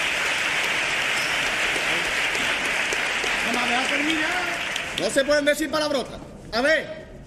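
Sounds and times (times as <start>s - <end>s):
audience applause: 0.0s - 5.5s
speech: 3.8s - 7.0s.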